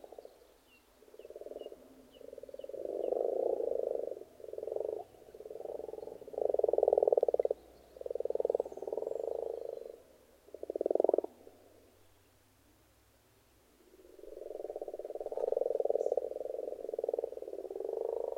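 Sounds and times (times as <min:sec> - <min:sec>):
frogs croaking in a pond: 0:00.0 - 0:12.0, 0:13.8 - 0:18.3.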